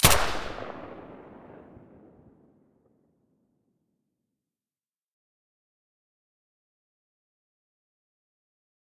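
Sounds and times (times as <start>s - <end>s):
SA80 rifle shot with silencer: 0.0s - 2.2s.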